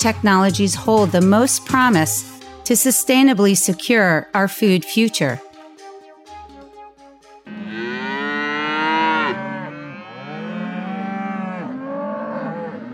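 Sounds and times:
speech: 0:00.0 - 0:05.5
cow mooing in long sustained bellows: 0:07.5 - 0:12.9.

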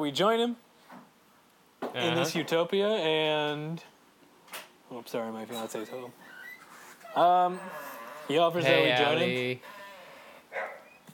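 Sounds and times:
speech: 0:00.0 - 0:00.7, 0:01.9 - 0:03.9, 0:04.5 - 0:06.3, 0:07.1 - 0:09.8
dog bark in the hallway: 0:10.5 - 0:10.9.

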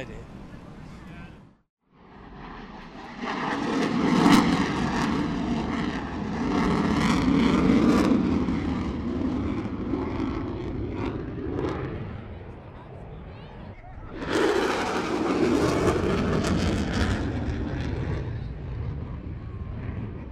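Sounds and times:
faint voices: 0:00.0 - 0:01.6, 0:12.0 - 0:14.4
F-18 Super Hornet jet roaring past: 0:01.9 - 0:20.3.

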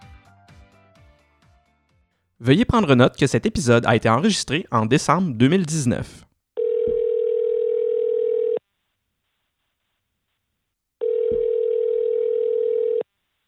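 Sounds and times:
speech: 0:02.4 - 0:06.3
outgoing internet telephone call tone beeps: 0:06.6 - 0:08.6, 0:11.0 - 0:13.0.

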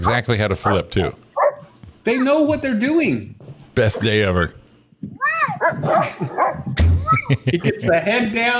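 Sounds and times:
speech: 0:00.0 - 0:01.2, 0:02.0 - 0:05.1, 0:07.3 - 0:08.5
Rottweiler barking and yelping on a trampoline: 0:00.6 - 0:02.4, 0:05.2 - 0:06.8
laughter: 0:05.8 - 0:08.1.

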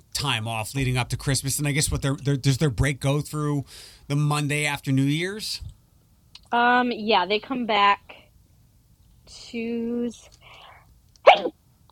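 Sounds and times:
speech: 0:00.2 - 0:05.8, 0:06.5 - 0:08.2, 0:09.3 - 0:10.4, 0:11.3 - 0:11.6
person sneezing: 0:11.3 - 0:11.5.

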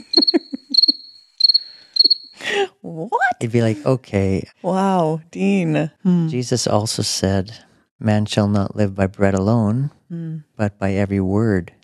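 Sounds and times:
crickets chirping: 0:00.0 - 0:02.4
speech: 0:00.2 - 0:01.0, 0:02.6 - 0:11.8.

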